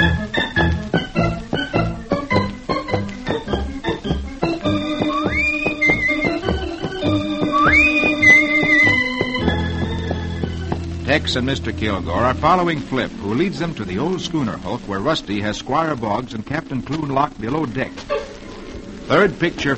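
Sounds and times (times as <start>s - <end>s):
brisk instrumental theme music with hoofbeat-like rhythm and swooping high notes: 0.0s - 15.4s
speech: 11.2s - 18.2s, 19.1s - 19.7s.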